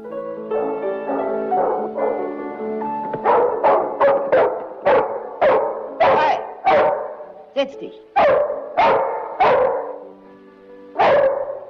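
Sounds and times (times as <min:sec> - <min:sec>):
schnauzer dog barking: 0:01.1 - 0:02.4, 0:03.2 - 0:07.4, 0:08.2 - 0:10.1, 0:11.0 - 0:11.6
speech: 0:07.6 - 0:08.4.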